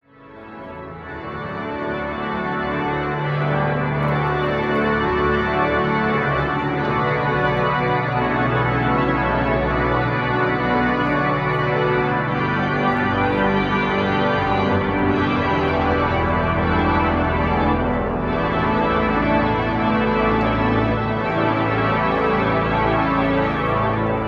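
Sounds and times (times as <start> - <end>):
organ playing: 0.2 - 24.2.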